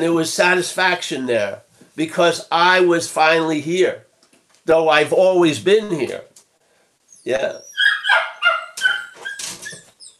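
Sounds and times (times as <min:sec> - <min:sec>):
speech: 0:00.0 - 0:04.1, 0:04.7 - 0:06.3, 0:07.2 - 0:07.7
dog yapping with high-pitched barks: 0:07.6 - 0:10.1.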